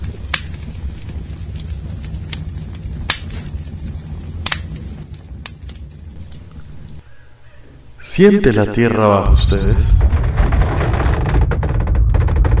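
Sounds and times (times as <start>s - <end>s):
fire crackling with pops and snaps: 0.0s - 12.5s
speech: 8.2s - 10.1s.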